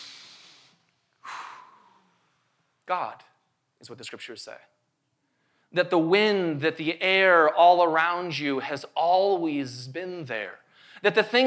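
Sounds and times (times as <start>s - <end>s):
deep breath in: 0.0s - 2.3s, 10.7s - 11.0s
speech: 2.9s - 4.8s, 5.7s - 11.4s.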